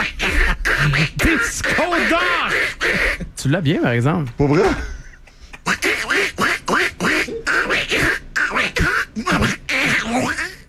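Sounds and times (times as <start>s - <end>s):
person imitating duck quacks: 0.0s - 3.4s, 5.6s - 10.6s
speech: 0.8s - 2.8s, 3.4s - 5.0s.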